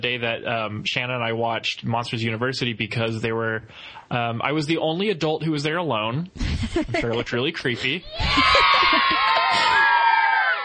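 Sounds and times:
speech: 0.0s - 9.8s
laughter: 6.4s - 7.2s, 7.8s - 10.1s
many children screaming and shrieking: 8.1s - 10.6s.

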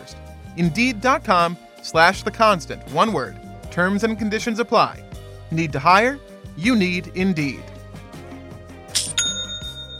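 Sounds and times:
speech: 0.1s - 7.7s
online store sale notification chime: 9.0s - 9.9s.

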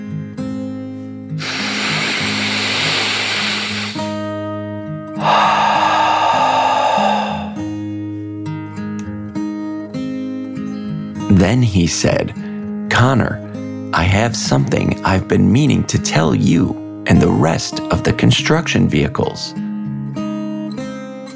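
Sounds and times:
music: 0.0s - 21.3s
dragon's deep breath in and out: 1.4s - 4.2s, 5.2s - 8.3s
speech: 11.4s - 12.4s, 13.0s - 19.6s.

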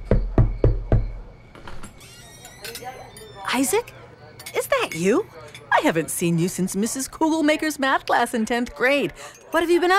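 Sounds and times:
firm knocks on the wooden door of a house: 0.0s - 1.2s
speech: 3.5s - 4.0s, 4.6s - 9.9s.

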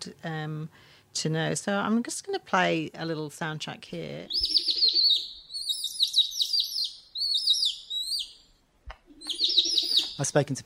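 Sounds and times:
speech: 0.0s - 4.7s, 10.2s - 10.6s
little owl trilling call: 4.3s - 10.3s.

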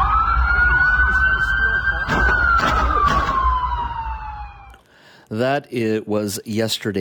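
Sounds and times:
low rumble of traffic: 0.0s - 4.8s
police siren wailing: 0.0s - 4.8s
gunshots fired during police pursuit: 2.0s - 3.9s
speech: 5.3s - 7.0s.

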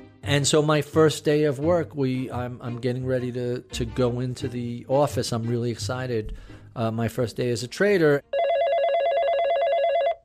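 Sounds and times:
speech: 0.3s - 8.3s
telephone bell ringing: 8.3s - 10.2s.

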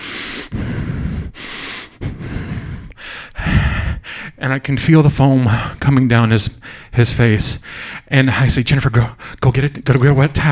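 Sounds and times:
person imitating hard breathing through the nose: 0.0s - 4.4s
speech: 4.4s - 10.5s.

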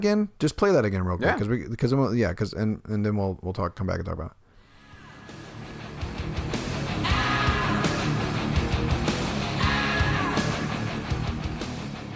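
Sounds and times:
speech: 0.0s - 4.4s
heavy distorted electric guitar in a rock song: 5.4s - 12.1s.

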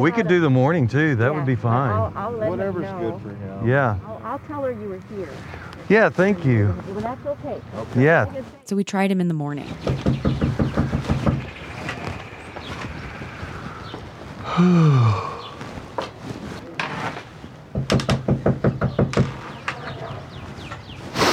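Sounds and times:
speech: 0.0s - 10.4s, 14.6s - 15.4s
rapid firm knocking on a door: 9.8s - 11.5s, 17.7s - 19.4s.

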